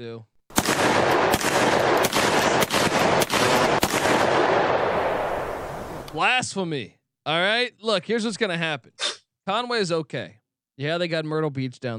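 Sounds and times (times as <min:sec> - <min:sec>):
speech: 0:00.0 - 0:01.2, 0:06.1 - 0:11.9
gunfire sound effect with sharp shots: 0:00.5 - 0:06.0
dense continuous roar of rapid gunfire: 0:00.6 - 0:05.6.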